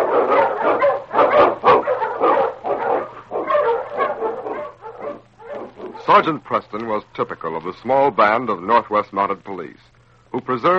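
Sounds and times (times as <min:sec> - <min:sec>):
pack of Eskimo sled dogs barking and yipping: 0:00.0 - 0:06.3
speech: 0:06.1 - 0:10.7.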